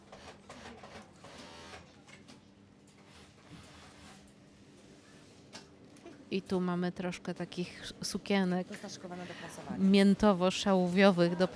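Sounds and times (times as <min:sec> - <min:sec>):
sewing machines running in a workshop: 0:00.0 - 0:01.9
speech: 0:06.3 - 0:11.5.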